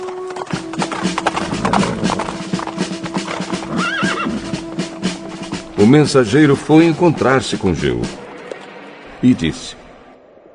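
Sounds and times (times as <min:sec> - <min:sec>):
hooves of several horses clip-clopping: 0:00.0 - 0:07.4
horse whinnying: 0:01.2 - 0:04.6
speech: 0:05.8 - 0:08.2, 0:09.2 - 0:09.8.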